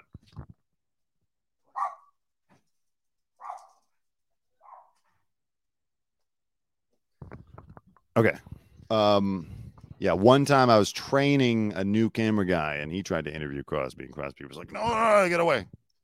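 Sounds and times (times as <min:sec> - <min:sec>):
dog barks: 0:01.7 - 0:02.2, 0:03.4 - 0:03.8, 0:04.6 - 0:05.0
speech: 0:08.2 - 0:15.8.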